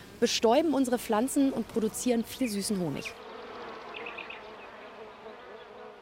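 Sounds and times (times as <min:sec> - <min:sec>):
speech: 0:00.2 - 0:03.2
many honey bees buzzing at a hive: 0:00.7 - 0:06.0.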